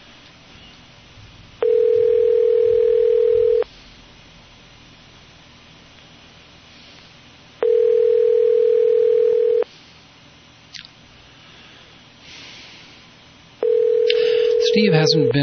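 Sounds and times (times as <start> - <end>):
telephone ringback tone while a call connects: 1.6 - 3.6, 7.6 - 9.6, 13.6 - 15.4
speech: 14.8 - 15.4.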